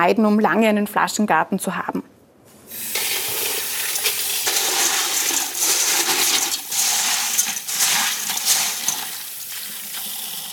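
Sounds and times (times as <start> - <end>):
speech: 0.0 - 2.1
water running: 2.7 - 10.5.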